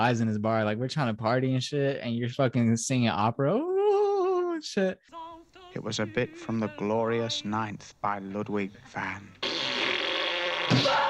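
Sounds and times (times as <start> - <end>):
speech: 0.0 - 4.0, 4.6 - 9.5
voice blowing a buzzy raspberry imitating a fart: 9.4 - 11.0.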